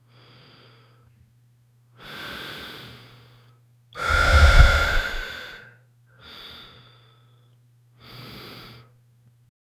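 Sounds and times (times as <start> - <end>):
person taking a deep breath: 4.0 - 5.6.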